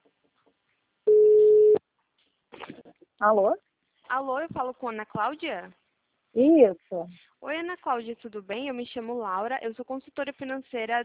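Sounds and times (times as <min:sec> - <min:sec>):
telephone ringback tone on an outgoing call: 0:01.1 - 0:01.8
speech: 0:03.2 - 0:11.0.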